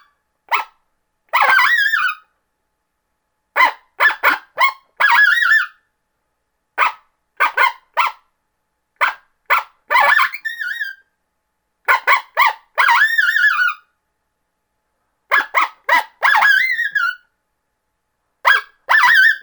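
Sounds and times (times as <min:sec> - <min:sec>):
coyote yipping and howling: 0:00.0 - 0:02.3, 0:03.6 - 0:05.8, 0:06.8 - 0:08.2, 0:09.0 - 0:11.0, 0:11.9 - 0:13.9, 0:15.3 - 0:17.3, 0:18.4 - 0:19.4.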